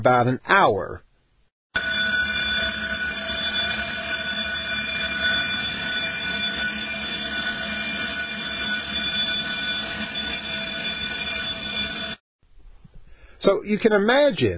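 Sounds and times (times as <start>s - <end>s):
speech: 0.0s - 1.1s, 13.4s - 14.5s
building fire alarm ringing: 1.8s - 12.2s.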